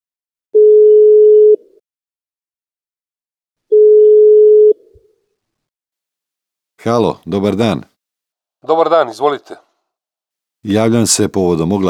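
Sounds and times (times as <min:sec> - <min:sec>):
telephone ringing tone: 0:00.6 - 0:01.6, 0:03.7 - 0:04.8
speech: 0:06.8 - 0:07.9, 0:08.6 - 0:09.6, 0:10.6 - 0:11.8.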